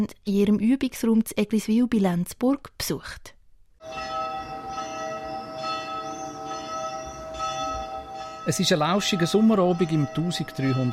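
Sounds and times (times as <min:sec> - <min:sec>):
speech: 0:00.0 - 0:04.2, 0:08.5 - 0:10.9
church bells ringing in a quiet village on a summer evening: 0:03.8 - 0:10.9.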